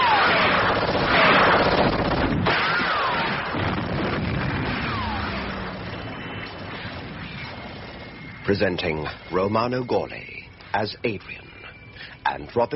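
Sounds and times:
gunfire barrage: 0.0s - 7.8s
rumbling booms: 1.8s - 8.6s
speech: 8.5s - 12.7s.

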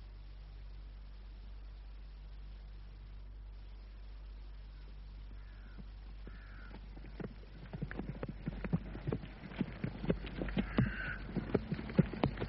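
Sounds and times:
horses' hooves clip-clopping at a canter: 5.3s - 12.4s.

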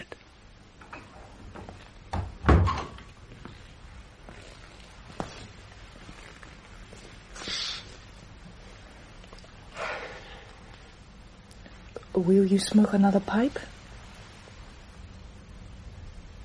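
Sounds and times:
heavy door thunk: 2.1s - 3.0s
speech: 12.2s - 13.8s.

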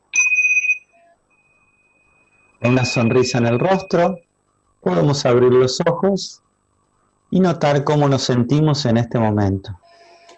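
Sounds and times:
meditation bell strike ringing: 0.1s - 4.2s
speech: 2.6s - 6.4s, 7.3s - 9.8s.

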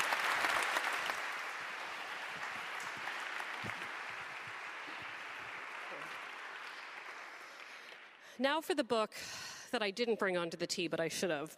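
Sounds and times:
audience applause: 0.0s - 8.2s
speech: 8.4s - 11.5s.

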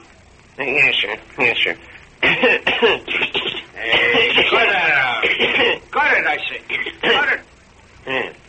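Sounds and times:
speech: 0.6s - 8.4s
two people coughing deliberately: 2.2s - 5.8s.

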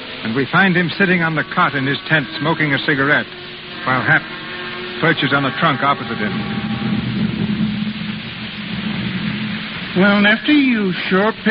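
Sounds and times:
heavy rain falling at night outside a carnival tent: 0.0s - 11.5s
speech: 0.2s - 4.4s, 5.0s - 6.9s, 10.0s - 11.5s.

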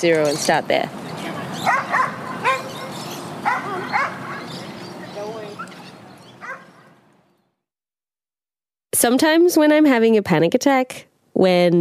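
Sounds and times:
speech: 0.0s - 1.0s, 9.0s - 11.7s
steady outdoor hum: 0.0s - 7.5s
dog barking at a dog park: 1.6s - 4.6s, 6.4s - 7.0s.

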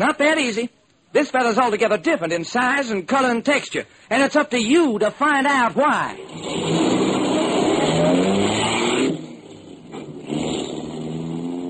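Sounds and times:
speech: 0.0s - 6.8s
car driving off: 6.2s - 11.6s.

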